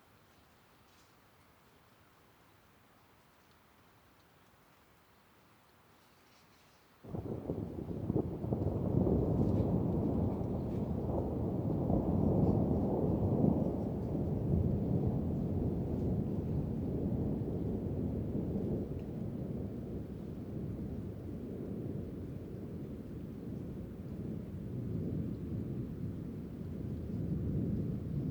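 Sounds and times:
close thunder rumbling at Gorges Chandel on a late spring evening: 0:07.1 - 0:28.3.

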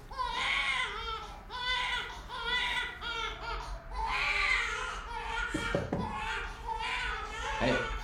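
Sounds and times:
baby girl crying: 0:00.1 - 0:08.0
brief clattering knock: 0:05.5 - 0:06.2.

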